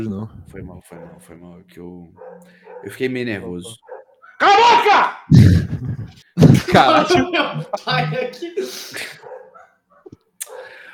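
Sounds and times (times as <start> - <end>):
speech: 0.0 - 9.3
indoor noise: 0.0 - 10.8
neighbor's dog barking: 0.9 - 1.4, 2.2 - 4.8, 9.2 - 10.8
laughter: 5.3 - 9.3.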